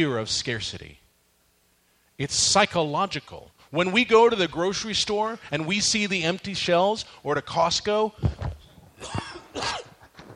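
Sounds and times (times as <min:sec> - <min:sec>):
speech: 0:00.0 - 0:01.0, 0:02.2 - 0:09.8
person coughing from a tickle in the throat: 0:09.0 - 0:10.2.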